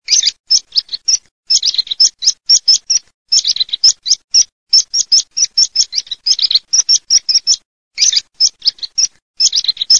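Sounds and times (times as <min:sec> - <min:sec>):
meadow pipit singing: 0:00.0 - 0:09.9.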